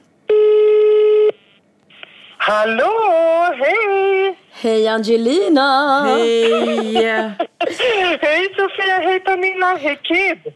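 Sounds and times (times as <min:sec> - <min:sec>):
telephone ringing tone as a call is placed: 0:00.3 - 0:01.6
speech: 0:02.5 - 0:10.5
laughter: 0:06.0 - 0:08.2.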